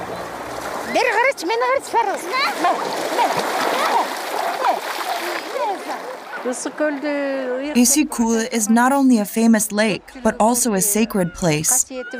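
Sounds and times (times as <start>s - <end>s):
people splashing while swimming in a lake: 0.0s - 8.4s
many excited voices calling and shouting: 0.8s - 12.1s
speech: 0.9s - 12.1s.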